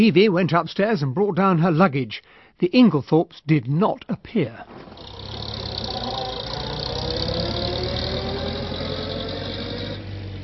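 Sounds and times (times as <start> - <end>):
speech: 0.0 - 5.4
car engine as the car drives off down a drive: 4.7 - 10.4.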